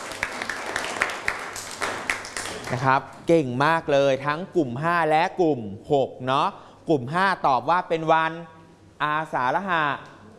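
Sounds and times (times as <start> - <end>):
school class clapping for a classmate: 0.0 - 2.9
speech: 2.7 - 10.1.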